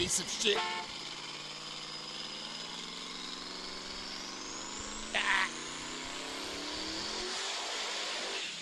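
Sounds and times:
speech: 0:00.0 - 0:00.9
turbocharged rotary car engine revving: 0:00.9 - 0:08.5.

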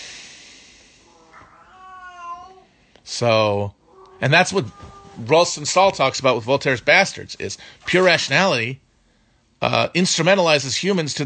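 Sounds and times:
steady hiss: 0:00.0 - 0:11.2
female cat meowing to be let out: 0:01.1 - 0:02.7, 0:03.8 - 0:05.2
speech: 0:03.1 - 0:08.8, 0:09.6 - 0:11.2.

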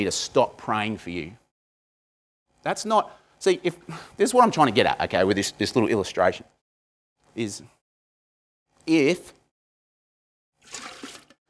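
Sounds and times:
speech: 0:00.0 - 0:01.4, 0:02.6 - 0:06.6, 0:07.4 - 0:07.8, 0:08.8 - 0:09.4
liquid pouring: 0:10.6 - 0:11.4.

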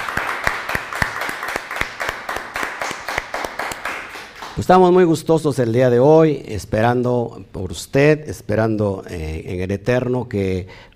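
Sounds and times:
audience clapping in a steady quick rhythm: 0:00.0 - 0:04.9
speech: 0:04.6 - 0:10.9.

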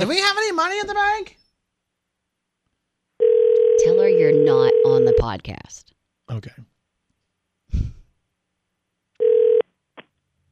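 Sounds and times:
speech: 0:00.0 - 0:01.4, 0:03.8 - 0:06.7
phone giving a short electronic ring: 0:03.2 - 0:05.3, 0:09.2 - 0:09.6.

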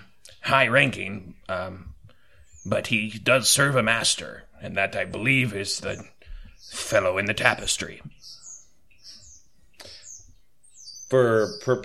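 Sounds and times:
high thin bird chirps and tweets: 0:00.0 - 0:11.8
speech: 0:00.5 - 0:01.9, 0:02.6 - 0:08.4, 0:11.1 - 0:11.8.

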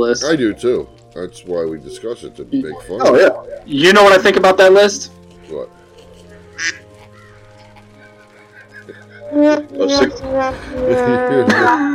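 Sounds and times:
speech: 0:00.0 - 0:05.8, 0:06.6 - 0:06.8, 0:09.3 - 0:11.9
laughter: 0:05.5 - 0:11.9
duck quacking: 0:06.3 - 0:08.2.

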